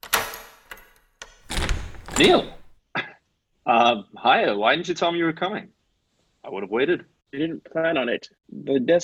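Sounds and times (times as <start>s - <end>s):
key turning in apartment door lock: 1.5s - 2.7s
speech: 2.2s - 2.6s, 3.7s - 5.8s, 6.4s - 9.0s.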